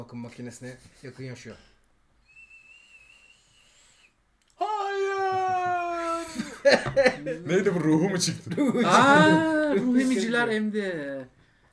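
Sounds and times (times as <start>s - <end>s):
speech: 0.0s - 1.8s, 6.6s - 11.4s
thin steady high-pitched whistle: 2.2s - 4.2s
laughter: 4.9s - 10.5s.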